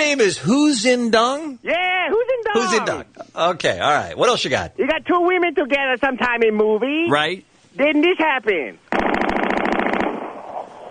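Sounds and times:
speech: 0.0s - 9.2s
machine gun firing rapidly: 8.9s - 10.6s.

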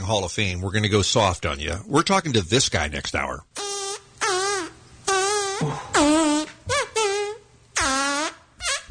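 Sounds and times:
speech: 0.0s - 3.5s
loud pitched fart noises in heavy metal music: 3.6s - 8.8s.

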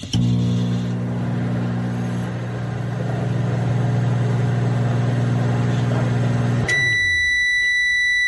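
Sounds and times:
microwave oven running with electric hum: 0.0s - 8.2s
microwave oven loud high-pitched beep: 5.1s - 8.2s.

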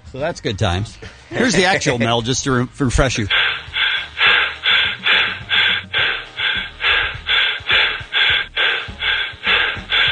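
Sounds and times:
speech: 0.2s - 3.7s
heavy rapid breathing of a caller on a telephone line: 3.3s - 10.1s.

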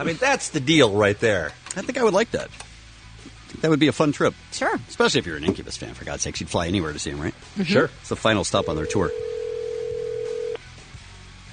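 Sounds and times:
speech: 0.0s - 2.6s, 3.6s - 9.3s
telephone dial tone as a call is dialed out to Walnut, California: 8.6s - 10.6s.

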